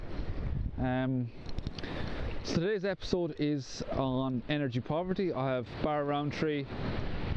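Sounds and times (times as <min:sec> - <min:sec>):
speech: 0:00.8 - 0:01.5, 0:02.4 - 0:07.1
Atlantic ocean waves breaking on the shore: 0:01.2 - 0:07.3.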